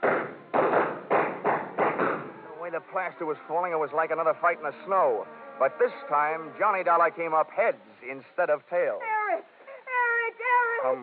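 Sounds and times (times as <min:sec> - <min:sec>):
gunshots fired into a ceiling: 0:00.0 - 0:02.5
speech: 0:02.8 - 0:09.4, 0:10.8 - 0:11.0.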